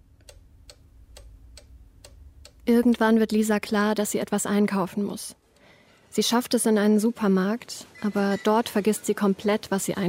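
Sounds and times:
low hum: 0.0s - 10.0s
wall clock ticking with crisp clicks: 0.1s - 3.4s
speech: 2.7s - 5.4s, 6.1s - 10.0s.

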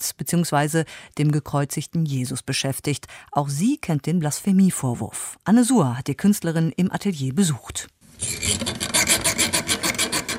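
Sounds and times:
speech: 0.2s - 8.8s
small hand saw cutting a wooden crucifix in an artist's studio: 8.2s - 10.3s.

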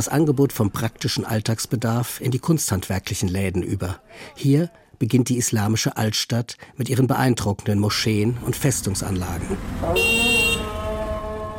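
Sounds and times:
steady roadway rumble: 0.0s - 4.4s, 7.8s - 11.5s
speech: 0.0s - 10.4s
car horns honking angrily in a traffic jam in an Islamic old town: 9.6s - 11.5s.

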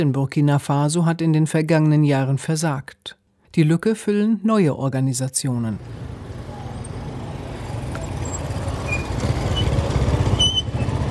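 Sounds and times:
speech: 0.0s - 6.3s
old loud mopeds in dense rush-hour street traffic: 5.8s - 11.0s.

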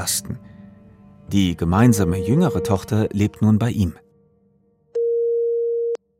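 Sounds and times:
speech: 0.0s - 0.5s, 1.3s - 4.0s
steady electronic telephone tone during a phone call: 2.0s - 2.8s, 5.0s - 6.0s.

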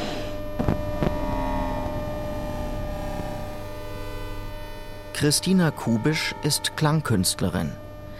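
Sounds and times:
electromagnetic field hum from a transport system: 0.0s - 8.1s
sharp crackling bursts: 0.2s - 5.2s
speech: 5.2s - 7.8s.

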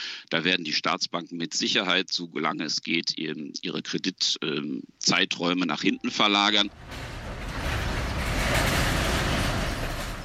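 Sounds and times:
speech: 0.3s - 7.2s
trucks driving through a border town: 6.7s - 10.2s.

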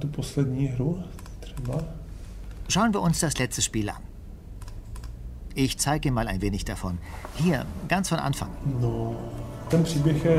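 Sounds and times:
speech: 0.0s - 2.0s, 2.7s - 4.1s, 5.6s - 10.3s
computer keyboard typing: 4.6s - 5.1s.

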